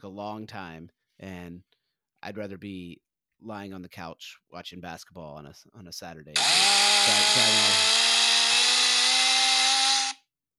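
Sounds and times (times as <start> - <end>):
speech: 0.0 - 8.0
voice imitating a chainsaw with a harsh buzzing drone: 6.4 - 10.2.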